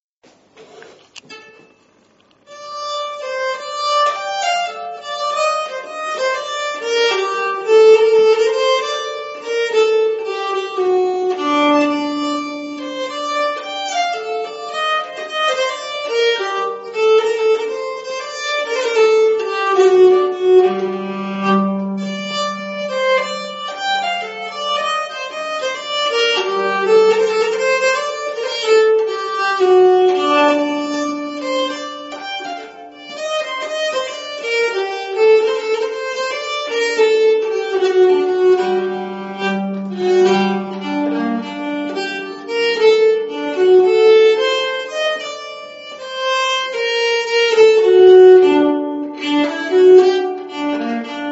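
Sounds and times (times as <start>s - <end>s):
nyckelharpa playing a slow polska: 1.2s - 51.3s.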